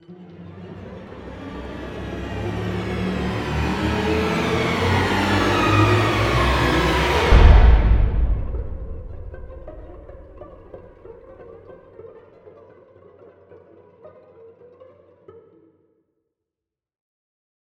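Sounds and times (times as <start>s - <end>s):
cinematic trailer music transition: 0.8s - 11.2s.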